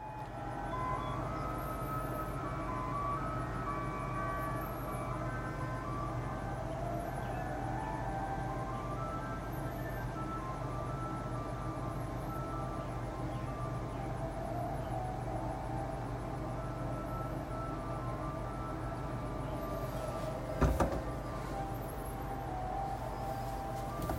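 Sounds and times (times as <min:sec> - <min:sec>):
ice cream truck jingle playing in a neighborhood: 0:00.0 - 0:24.1
low rumbling background: 0:00.0 - 0:24.1.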